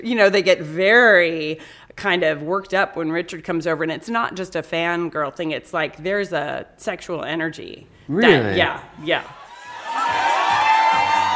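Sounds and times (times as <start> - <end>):
speech: 0.0 - 9.4
crowd of women screaming and cheering on a cruise: 9.4 - 11.3.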